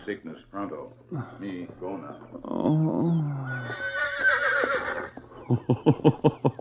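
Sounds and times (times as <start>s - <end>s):
speech: 0.0s - 4.0s, 5.5s - 6.5s
horse whinnying loudly with a long wavering falling cry: 2.7s - 5.3s
laughter: 5.4s - 6.5s.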